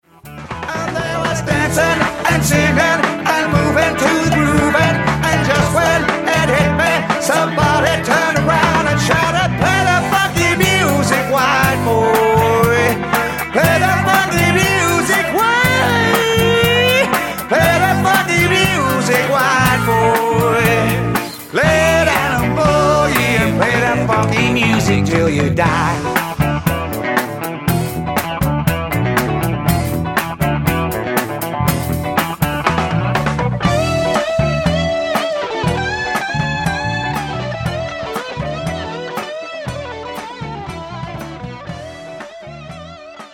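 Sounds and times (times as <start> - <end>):
funky music: 0.0 - 43.3.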